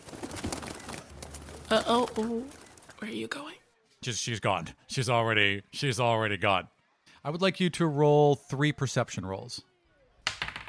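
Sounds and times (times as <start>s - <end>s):
sparrow fluttering wingbeats taking off: 0.0s - 3.2s
speech: 1.7s - 9.7s.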